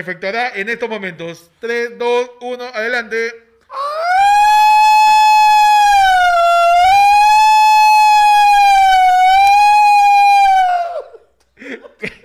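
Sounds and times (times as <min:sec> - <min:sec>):
speech: 0:00.0 - 0:04.0
loud quarantine alarm siren with multiple horns wailing: 0:03.8 - 0:10.9
laughter: 0:11.6 - 0:12.2.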